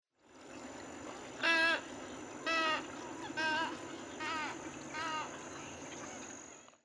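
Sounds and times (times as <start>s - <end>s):
tricolored heron calling: 1.4s - 6.3s.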